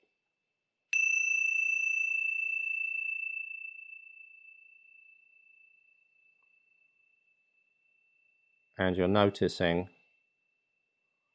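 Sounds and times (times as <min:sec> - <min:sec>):
Ting Sha bell struck, clear high-pitched tone: 0:00.9 - 0:08.8
speech: 0:08.8 - 0:10.0.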